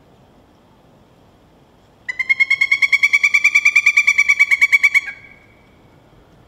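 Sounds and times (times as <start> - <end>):
Pileated Woodpecker calling: 2.1 - 5.8.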